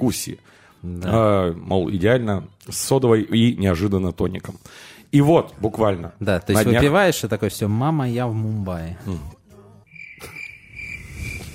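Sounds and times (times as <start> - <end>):
speech: 0.0 - 9.4
crickets chirping in a high-pitched trill: 9.9 - 11.5.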